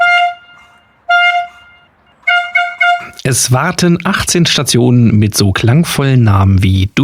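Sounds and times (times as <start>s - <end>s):
brassy horn blasts as start signal: 0.0s - 3.8s
speech: 3.0s - 7.0s.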